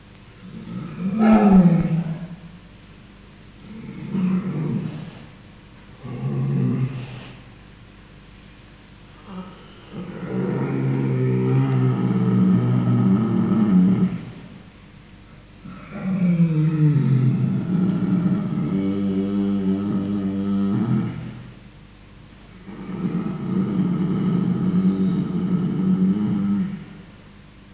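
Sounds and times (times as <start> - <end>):
polar bear Ursus maritimus roaring: 0.4 - 2.4, 3.7 - 5.2, 9.2 - 14.3, 15.7 - 21.4, 22.7 - 27.0
polar bear Ursus maritimus low rumbling growl: 0.4 - 2.7, 3.6 - 5.3, 6.0 - 7.4, 9.2 - 14.6, 15.6 - 21.6, 22.6 - 27.0.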